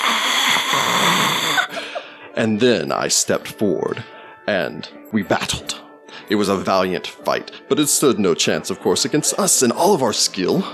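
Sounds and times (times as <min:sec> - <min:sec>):
voice imitating a mummy's rattling gasp: 0:00.0 - 0:01.9
speech: 0:02.4 - 0:10.7.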